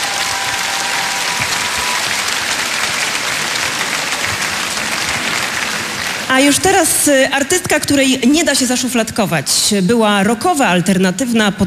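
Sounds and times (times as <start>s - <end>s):
audience applause: 0.0s - 7.6s
speech: 6.4s - 11.6s.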